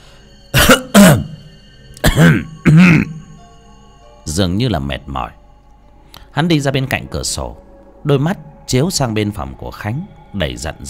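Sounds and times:
man coughing: 0:00.6 - 0:01.4, 0:02.0 - 0:03.2
speech: 0:04.4 - 0:05.4, 0:06.4 - 0:10.8.

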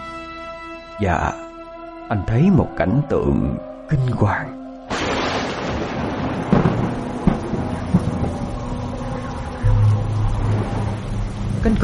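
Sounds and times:
speech: 0:01.0 - 0:01.5, 0:02.1 - 0:05.2, 0:11.6 - 0:11.8
heavy rain pouring down in a storm: 0:04.9 - 0:11.8.

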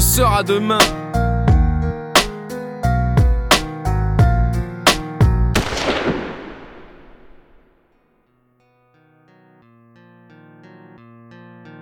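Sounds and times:
sad piano-backed rap song: 0:00.0 - 0:05.2
speech: 0:00.2 - 0:01.2
gunshot: 0:05.6 - 0:07.8.

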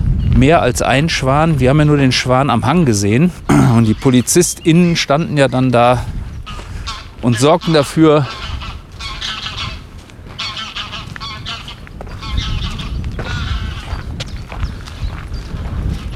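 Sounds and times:
speech: 0:00.4 - 0:06.2, 0:07.2 - 0:08.4
flock of geese honking in flight over a wetland: 0:06.5 - 0:14.0.

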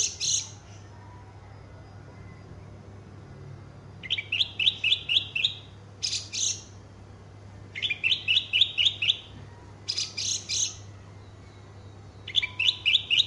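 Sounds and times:
Horsfield's bush lark song: 0:00.0 - 0:00.8, 0:04.0 - 0:06.8, 0:07.7 - 0:09.3, 0:09.9 - 0:13.2.

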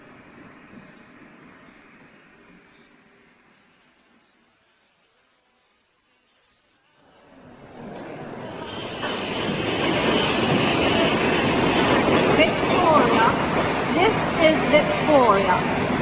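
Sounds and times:
train pulling in at a railway station platform: 0:00.0 - 0:16.0
voices at a railway station: 0:10.0 - 0:15.8.

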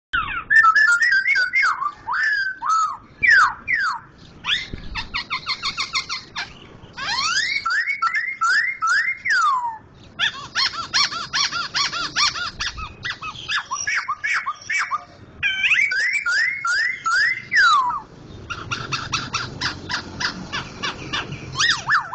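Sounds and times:
laughingthrush singing loud slurred whistles: 0:00.2 - 0:22.1.

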